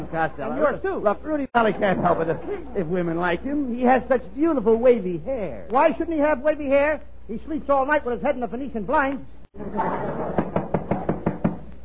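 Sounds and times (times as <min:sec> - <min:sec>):
speech: 0:00.1 - 0:10.5
laughter: 0:01.6 - 0:03.0, 0:09.6 - 0:10.7
knocking on a door: 0:10.4 - 0:11.7.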